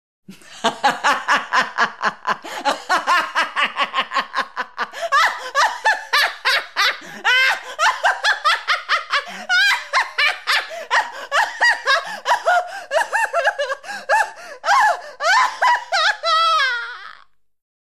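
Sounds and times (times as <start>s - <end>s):
laughing: 0.3s - 17.3s.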